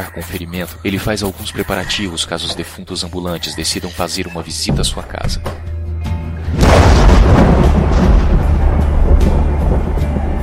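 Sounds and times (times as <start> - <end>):
speech: 0.0 - 5.6
thunderclap from lightning rolling into a deep rumble: 6.5 - 10.4.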